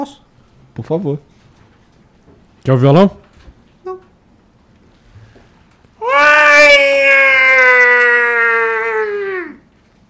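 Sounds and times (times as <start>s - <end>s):
speech: 0.0s - 0.2s, 0.8s - 1.3s, 2.6s - 3.2s
person imitating a wailing baby's cry: 6.0s - 9.7s.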